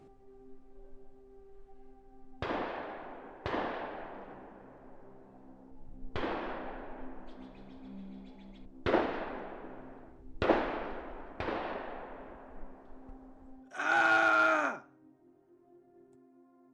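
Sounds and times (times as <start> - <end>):
gunshots echoing in the distance: 2.4 - 4.5, 8.8 - 9.8, 10.4 - 12.3
loud, piercing, blood-curdling scream: 13.7 - 14.8.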